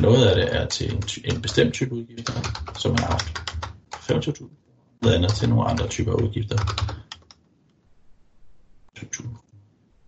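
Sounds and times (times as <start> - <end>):
speech: 0.0 - 3.5, 4.1 - 6.9, 9.0 - 9.4
computer keyboard typing of expense amounts into an application form: 0.7 - 4.2, 5.0 - 7.4.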